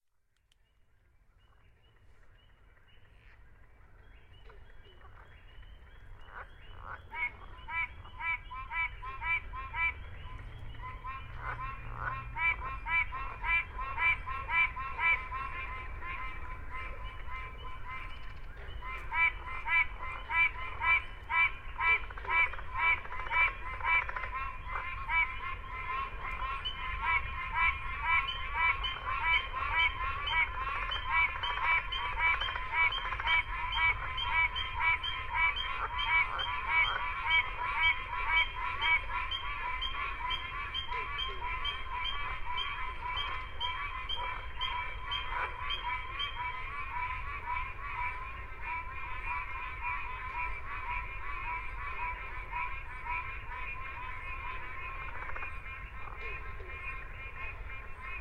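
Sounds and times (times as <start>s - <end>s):
whippoorbill frog calling in a bog: 1.4s - 58.1s.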